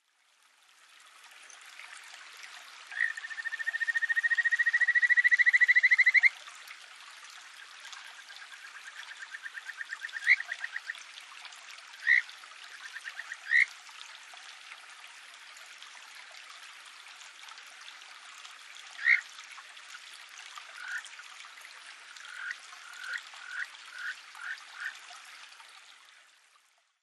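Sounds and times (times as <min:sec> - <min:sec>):
kajika frog calling: 0:03.0 - 0:06.3, 0:08.8 - 0:10.9, 0:12.0 - 0:13.7, 0:19.0 - 0:19.2, 0:20.8 - 0:21.0, 0:22.3 - 0:24.9.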